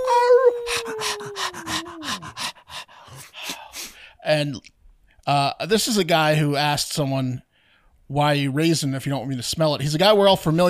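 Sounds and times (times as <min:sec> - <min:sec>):
dog howling: 0:00.0 - 0:03.2
dog panting breaths: 0:00.7 - 0:03.4
speech: 0:04.3 - 0:07.5, 0:08.1 - 0:10.6.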